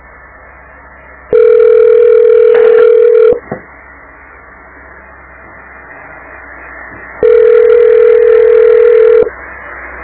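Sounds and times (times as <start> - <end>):
unanswered telephone ringback tone: 1.3 - 3.4, 7.2 - 9.3.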